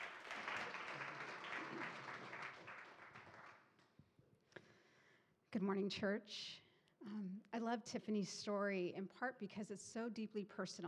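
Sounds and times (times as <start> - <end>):
crowd at a church service applauding: 0.0 - 3.8
speech: 5.6 - 10.8.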